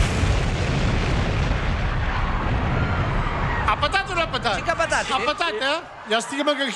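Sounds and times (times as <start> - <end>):
loud heavy bomb explosion: 0.0 - 5.1
speech: 4.3 - 6.7.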